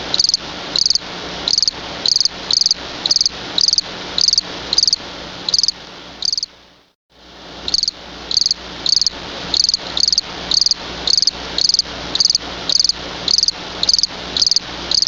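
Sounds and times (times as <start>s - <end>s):
field cricket Gryllus campestris chirping: 0.1s - 6.5s, 7.7s - 15.0s.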